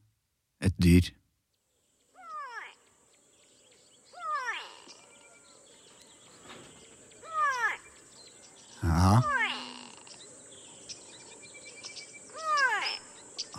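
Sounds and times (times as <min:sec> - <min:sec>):
speech: 0:00.7 - 0:01.2
faint birdsong: 0:00.7 - 0:13.5
grey go-away-bird nasal wailing calls: 0:02.1 - 0:02.9, 0:03.9 - 0:13.5.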